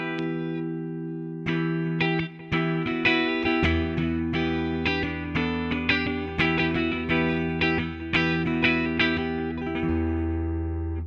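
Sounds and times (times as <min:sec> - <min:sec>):
clean electric guitar playing chords and picked notes: 0:00.0 - 0:11.0.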